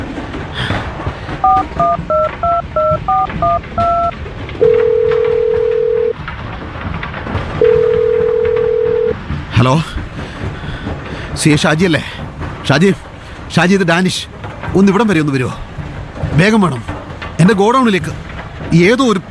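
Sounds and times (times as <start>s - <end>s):
touch-tone beeps of a phone number being keyed in: 1.4s - 4.1s
telephone ringing tones of an outgoing call: 1.4s - 6.2s, 7.6s - 9.2s
speech: 1.8s - 2.2s, 9.6s - 10.0s, 11.4s - 15.6s, 16.4s - 19.2s.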